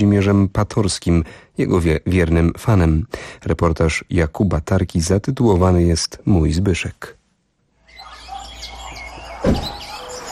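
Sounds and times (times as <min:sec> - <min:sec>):
speech: 0:00.0 - 0:07.2, 0:09.4 - 0:09.7
many birds chirping and tweeting outdoors: 0:07.8 - 0:10.3
dull thump: 0:09.4 - 0:09.8.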